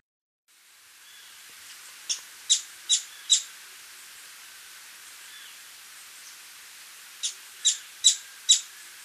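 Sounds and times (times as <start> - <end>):
faint hiss: 0.5 - 9.0
Streak-capped treehunter calls in Ecuador: 1.0 - 1.4, 2.0 - 3.6, 5.2 - 5.6, 7.2 - 9.0.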